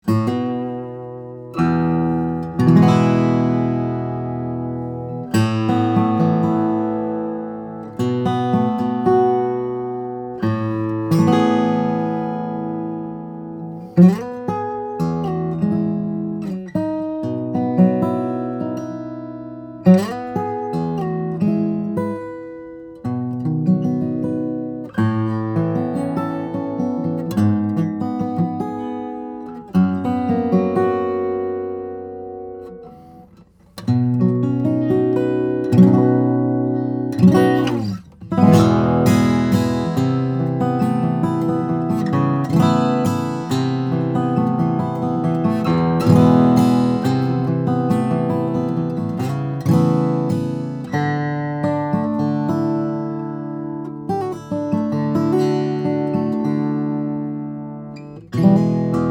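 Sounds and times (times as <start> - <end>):
Olson SJ Cutaway steel-string flattop guitar of Brazilian rosewood and cedar: 0.0 - 59.1.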